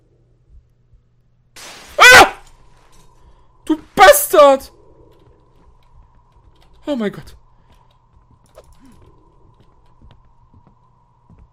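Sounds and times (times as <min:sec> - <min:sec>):
speech: 0:04.4 - 0:04.8, 0:06.9 - 0:07.4
footsteps in a video game: 0:05.2 - 0:11.5.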